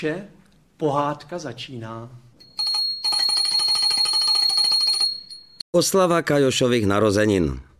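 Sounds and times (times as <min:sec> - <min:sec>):
speech: 0:00.0 - 0:02.2, 0:05.7 - 0:07.7
small hand bell ringing: 0:02.4 - 0:05.6.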